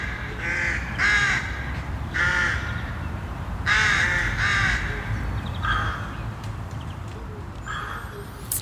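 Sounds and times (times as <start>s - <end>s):
rooks cawing in a breeding colony: 0.0s - 2.7s, 3.7s - 4.9s, 5.6s - 6.2s, 7.6s - 8.4s
chatter of many rooks in a colony: 0.0s - 8.6s.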